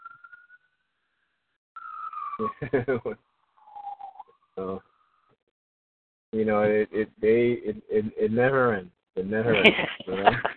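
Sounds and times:
wailing emergency vehicle siren: 0:01.8 - 0:04.3
laughter: 0:02.4 - 0:03.2, 0:09.2 - 0:10.5
speech: 0:02.4 - 0:03.3, 0:04.6 - 0:04.9, 0:06.4 - 0:10.5.

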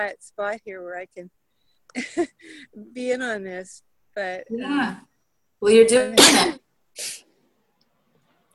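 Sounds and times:
speech: 0:00.0 - 0:07.2
person sneezing: 0:06.2 - 0:07.3.

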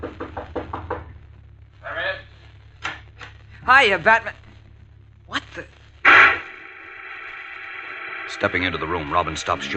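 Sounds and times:
knocks on a wooden door: 0:00.0 - 0:01.1
speech: 0:03.7 - 0:04.4, 0:05.3 - 0:05.8, 0:08.4 - 0:09.7.

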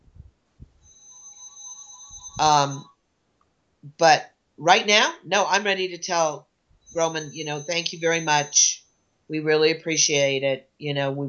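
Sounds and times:
electronic phone ringtone: 0:00.8 - 0:02.9, 0:06.9 - 0:08.7
speech: 0:02.4 - 0:02.9, 0:03.9 - 0:11.2.

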